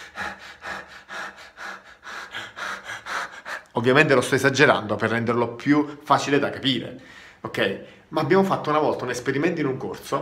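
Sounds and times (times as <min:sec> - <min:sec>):
fast shallow chest breathing: 0:00.0 - 0:03.8, 0:07.0 - 0:08.1
speech: 0:03.8 - 0:10.2.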